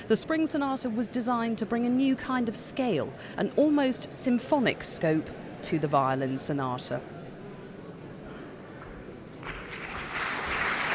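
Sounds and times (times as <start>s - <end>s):
speech: 0.1s - 7.2s
concert hall audience applauding a violinist and pianist: 9.4s - 10.9s.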